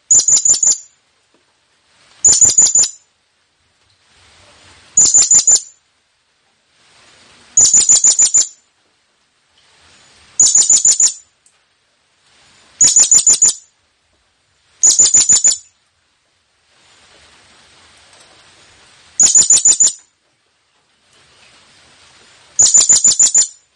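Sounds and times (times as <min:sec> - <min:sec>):
blue-crowned hanging parrot calling: 0:00.1 - 0:00.9, 0:02.2 - 0:03.0, 0:05.0 - 0:05.8, 0:07.6 - 0:08.6, 0:10.4 - 0:11.2, 0:12.8 - 0:13.7, 0:14.8 - 0:15.7, 0:19.2 - 0:20.0, 0:22.6 - 0:23.6.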